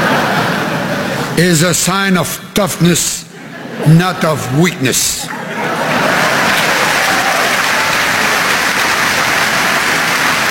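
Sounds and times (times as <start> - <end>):
laughter: 0.0 - 1.3, 3.3 - 7.6
speech: 1.4 - 6.1
large Canadian crowd applauding a speech: 5.3 - 10.4.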